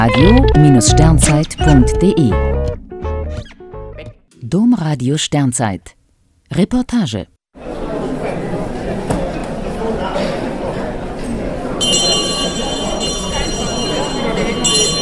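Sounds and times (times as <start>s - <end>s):
speech: 0.0s - 2.5s, 4.5s - 7.3s
murmuring room of voices in a city hall: 7.6s - 15.0s
large hand bell ringing in a city hall to open a council session: 11.8s - 15.0s.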